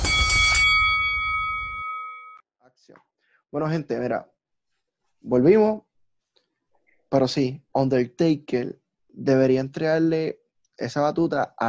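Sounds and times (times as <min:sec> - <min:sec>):
wrestling ring bell clanging: 0:00.0 - 0:02.4
speech: 0:02.9 - 0:04.3, 0:05.2 - 0:05.9, 0:07.1 - 0:11.6.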